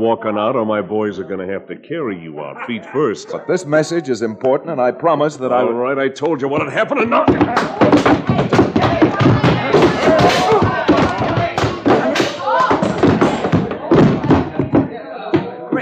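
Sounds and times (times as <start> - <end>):
speech: 0.0 - 8.6
people grunting: 2.4 - 3.6, 6.9 - 14.3
scuffling: 7.1 - 14.9
heavy punches knocking a man out: 7.2 - 14.8.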